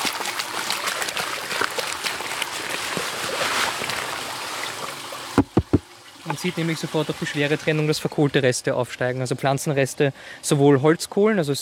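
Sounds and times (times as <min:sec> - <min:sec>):
bucket of soil tipped into a barrel of water: 0:00.0 - 0:04.8
brief knock: 0:05.4 - 0:05.8
speech: 0:06.4 - 0:11.5.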